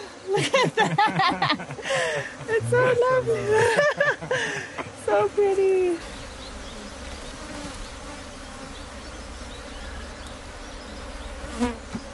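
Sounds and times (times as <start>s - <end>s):
many honey bees buzzing: 0.0s - 12.1s
laughter: 0.3s - 4.9s
speech: 0.4s - 6.1s.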